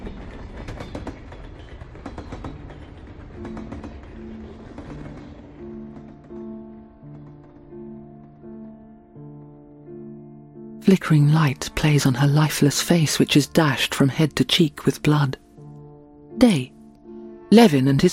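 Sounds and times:
train wheels rumbling and clattering over the rails: 0.0s - 8.4s
speech: 10.9s - 15.4s, 16.4s - 16.8s, 17.5s - 18.1s.

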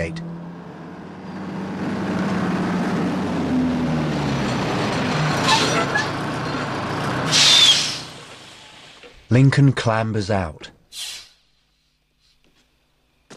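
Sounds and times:
heavy truck rig engine rumble: 0.0s - 9.5s
truck air brake hiss: 7.3s - 8.1s, 10.9s - 11.5s
speech: 9.3s - 11.1s.

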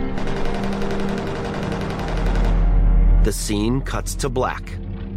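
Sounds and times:
twin-barrel turret guns firing: 0.1s - 2.9s
speech: 3.3s - 4.8s.

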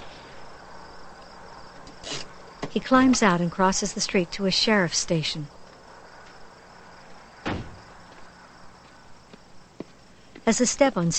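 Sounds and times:
insect-like chirping: 0.0s - 11.1s
speech: 2.8s - 5.6s, 10.5s - 11.1s
front door of a sheriff's station opening: 7.4s - 7.9s.

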